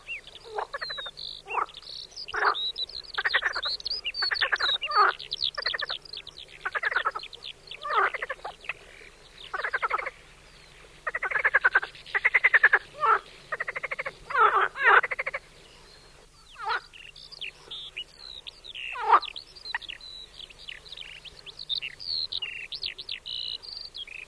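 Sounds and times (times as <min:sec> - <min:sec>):
marsh frog croaking in pulsed rattling bursts: 0:00.4 - 0:06.0, 0:06.6 - 0:07.2, 0:07.8 - 0:10.2, 0:11.0 - 0:15.4, 0:16.6 - 0:17.1, 0:18.8 - 0:20.0.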